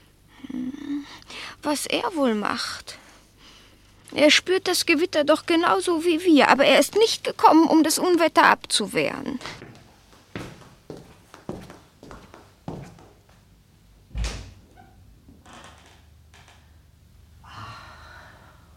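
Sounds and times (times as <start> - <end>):
speech: 1.6 - 3.0, 4.1 - 9.6
terrace door thud: 14.1 - 14.6.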